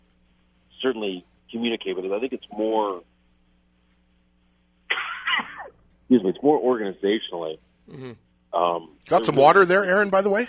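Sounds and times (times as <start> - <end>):
quiet line hum: 0.0 - 10.4
speech: 0.8 - 3.1, 6.1 - 10.4
single harsh cough from a man: 4.9 - 5.7.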